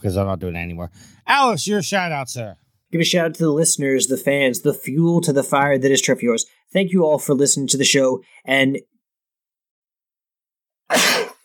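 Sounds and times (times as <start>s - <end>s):
speech: 0.0s - 9.0s, 10.9s - 11.2s
loud sharp sneeze: 10.9s - 11.4s.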